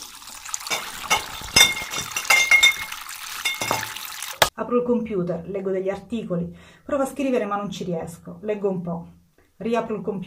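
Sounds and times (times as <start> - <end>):
liquid and handling sounds during wine bottling: 0.0 - 4.5
glass wine bottles clinking during bottling in a cellar: 0.7 - 4.0
speech: 4.6 - 10.2.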